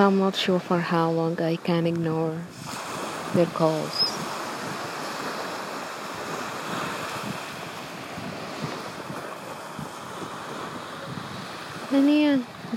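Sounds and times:
speech: 0.0s - 4.4s, 11.9s - 12.5s
gusts of wind: 0.0s - 12.7s
ocean waves breaking against the shore: 0.0s - 12.7s.

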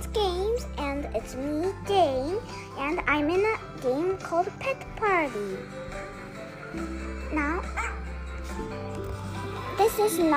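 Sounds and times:
speech: 1.2s - 6.0s, 6.7s - 10.3s
video game dog barking sound effect: 7.8s - 8.0s.

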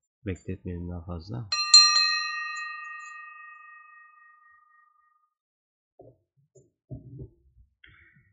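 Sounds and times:
speech: 0.2s - 1.6s
Tibetan ritual bell ringing: 1.5s - 5.2s.

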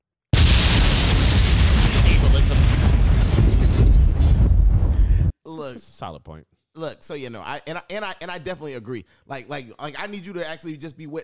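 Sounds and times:
bomb explosion: 0.4s - 5.3s
speech: 6.0s - 11.2s.

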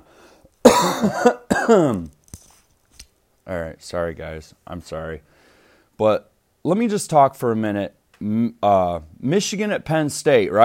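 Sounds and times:
person coughing: 0.6s - 2.1s
speech: 0.8s - 2.2s, 3.5s - 5.3s, 6.0s - 10.6s.

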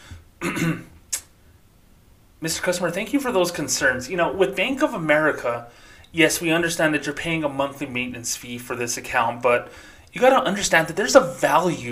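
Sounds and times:
speech: 0.4s - 0.9s, 2.4s - 11.9s
person clearing throat: 0.4s - 1.0s
short sharp breathy hiss: 5.7s - 6.2s, 9.6s - 10.1s.

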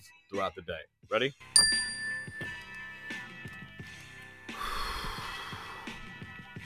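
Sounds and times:
speech: 0.3s - 1.9s
mindfulness bell chime: 1.6s - 3.7s
group taking loud deep breaths: 4.5s - 6.3s.

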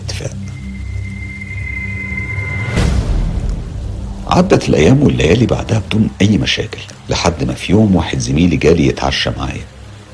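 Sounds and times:
steady rain hissing with a low rumbling undertone: 0.0s - 10.1s
sudden loud burst: 1.0s - 5.2s
speech: 4.4s - 10.1s.

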